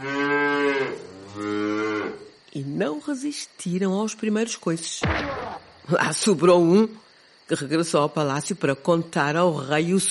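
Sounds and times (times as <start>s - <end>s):
ox mooing loudly: 0.0s - 2.3s
speech: 2.8s - 10.1s.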